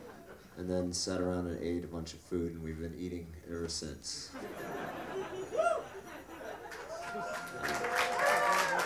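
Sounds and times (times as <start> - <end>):
audience laughter: 0.0 - 0.6, 4.3 - 7.8
speech: 0.6 - 4.8
live audience at a music performance cheering on Thanksgiving in America: 5.3 - 8.8
live audience applauding at a music performance: 6.6 - 8.8.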